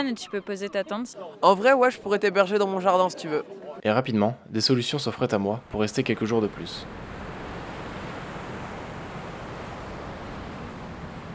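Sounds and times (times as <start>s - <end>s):
speech: 0.0s - 7.0s
waves washing against a beach: 5.7s - 11.3s.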